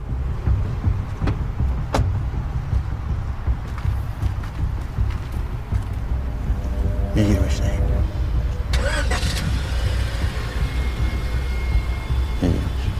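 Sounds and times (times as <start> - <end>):
low rumble of idling car engine: 0.0 - 12.9
car door unlatching and opening: 1.2 - 2.2.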